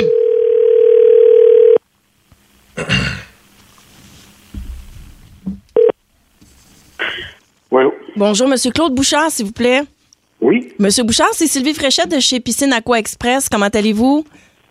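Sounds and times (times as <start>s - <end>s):
telephone dial tone: 0.0s - 1.8s
speech: 8.2s - 14.5s.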